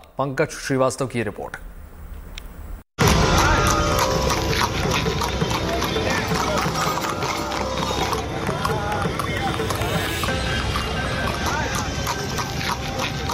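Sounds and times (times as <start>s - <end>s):
speech: 0.2s - 1.7s
crowd noise and voices at a horse-cart race: 3.0s - 13.3s
hooves of many horses trotting while pulling carts in an ikka horse-cart race: 3.0s - 13.3s.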